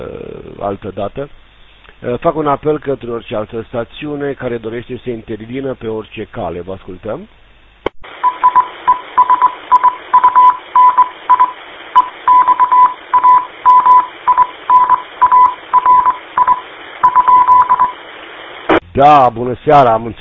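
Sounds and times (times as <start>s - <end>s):
speech: 0.0s - 1.4s, 2.0s - 7.4s, 19.0s - 20.2s
radio hiss: 8.1s - 19.2s
Morse code telegraphy tone over amateur radio: 8.2s - 18.0s.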